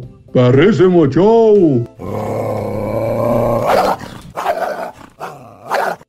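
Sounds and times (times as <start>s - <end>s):
speech: 0.4s - 2.2s
dog growling: 2.0s - 6.0s.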